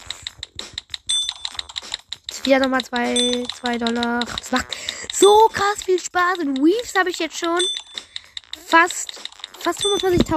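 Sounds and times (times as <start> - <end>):
typing on a computer keyboard: 0.0 - 10.3
bright ringing tone: 1.1 - 1.7, 3.0 - 4.0, 7.6 - 8.2, 9.6 - 10.3
speech: 2.4 - 7.8, 8.7 - 8.9, 9.6 - 10.3.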